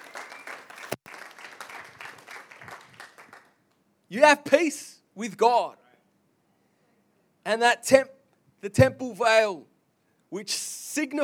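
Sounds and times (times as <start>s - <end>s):
audience applauding: 0.0s - 3.5s
speech: 4.1s - 5.8s, 7.4s - 9.7s, 10.3s - 11.2s.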